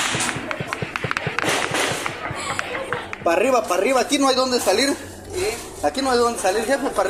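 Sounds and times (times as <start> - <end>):
gunshots in crossfire during an armed clash between criminal groups in Chiapas Mexico: 0.0 - 2.3
commotion: 0.0 - 4.6
speech: 3.2 - 7.0.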